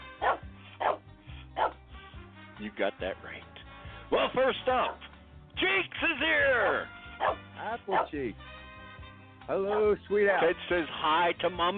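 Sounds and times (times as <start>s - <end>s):
dog barking: 0.2s - 1.0s, 1.6s - 1.8s, 6.6s - 8.2s, 9.7s - 9.9s
speech: 2.6s - 8.5s, 9.5s - 11.7s.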